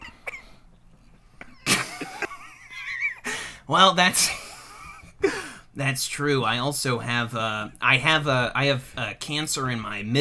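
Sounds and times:
person coughing: 0.0 - 0.6
laughter: 1.4 - 3.3
speech: 3.7 - 4.4, 5.8 - 10.1.

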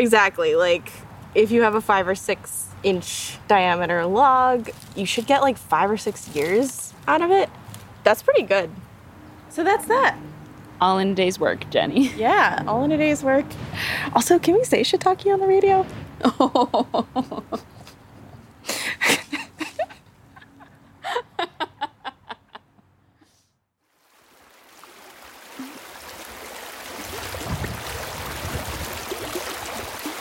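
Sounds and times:
speech: 0.0 - 8.8, 9.5 - 17.8
rhythmic laughter: 19.0 - 22.8
river water rushing: 24.0 - 30.1.

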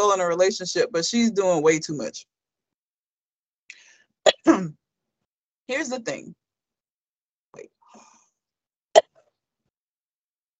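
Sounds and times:
speech: 0.0 - 2.3, 4.2 - 4.8, 5.7 - 6.4
cough or throat clearing from a tickle in the throat: 4.3 - 4.7.

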